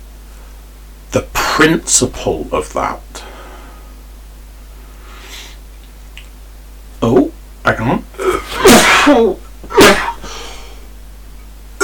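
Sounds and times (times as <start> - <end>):
speech: 1.1 - 3.3, 7.0 - 8.0, 9.1 - 9.4
person sniffing: 5.0 - 5.6, 9.7 - 10.9
person sneezing: 8.2 - 11.0.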